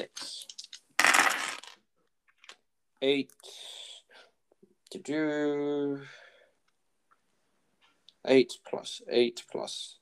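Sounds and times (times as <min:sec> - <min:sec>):
dice rolled for damage in a tabletop game on a hard tabletop: 0:00.0 - 0:02.6
speech: 0:03.0 - 0:03.7, 0:04.9 - 0:06.2, 0:08.2 - 0:10.0.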